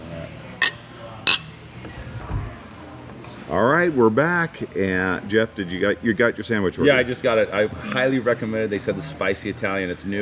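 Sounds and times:
glasses clinking in a toast: 0.6 - 1.7
speech: 3.5 - 10.2.

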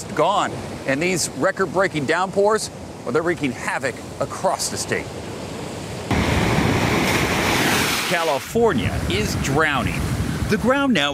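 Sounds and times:
speech: 0.0 - 5.3, 8.1 - 11.1
heavy surf crashing against the shore: 0.0 - 11.1
wind buffeting the microphone: 5.2 - 11.1.

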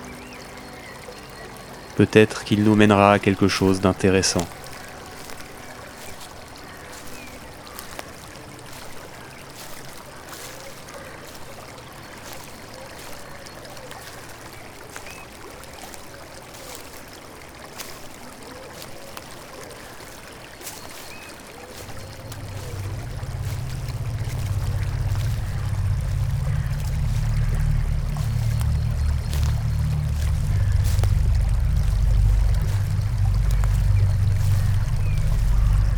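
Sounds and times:
stream water bubbling and trickling: 0.0 - 35.9
speech: 2.0 - 4.6
deep rushing rumble: 21.8 - 35.9.

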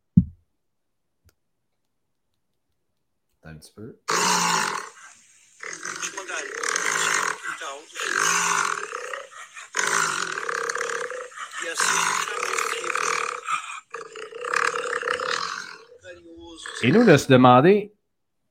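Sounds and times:
speech: 3.5 - 4.6, 7.6 - 9.0, 11.7 - 12.5, 16.8 - 18.0
jaguar roaring: 4.1 - 17.4.

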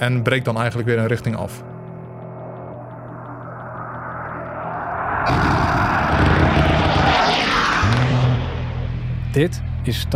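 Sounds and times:
speech: 0.0 - 1.8, 9.3 - 10.1
F-16 fighter jet flying low past buildings: 1.6 - 9.3.

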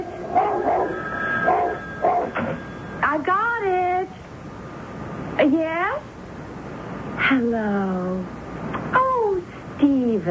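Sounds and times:
steady hiss: 0.0 - 10.2
dog barking: 0.3 - 2.4.

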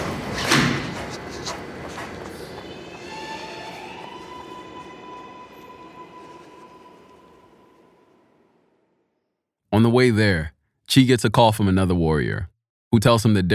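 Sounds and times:
sliding door shutting clunk: 0.0 - 2.6
subway train rumbling: 0.0 - 8.8
subway train electric whine pulling away: 1.5 - 9.1
speech: 9.8 - 13.5.

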